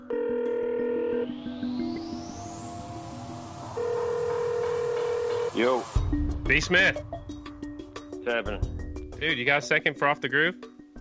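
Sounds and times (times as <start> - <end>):
electronic telephone tones during a cold call: 0.0 - 1.8, 3.6 - 5.9
speech: 5.6 - 7.1, 8.3 - 10.7.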